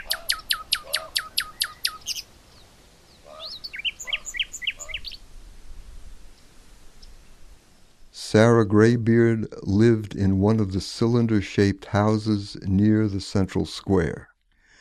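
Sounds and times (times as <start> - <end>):
birds singing and chirping: 0.0 - 5.2
faint outdoor noise: 0.0 - 14.8
speech: 8.3 - 14.3.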